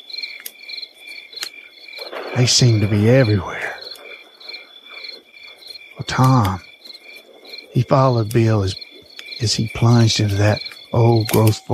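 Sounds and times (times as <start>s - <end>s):
loud crickets chirping in night woods: 0.0s - 11.7s
brief sharp clicks: 1.4s - 4.6s, 6.0s - 6.7s, 9.1s - 11.7s
speech: 2.4s - 3.7s, 6.2s - 6.7s, 7.8s - 8.8s, 9.4s - 11.7s.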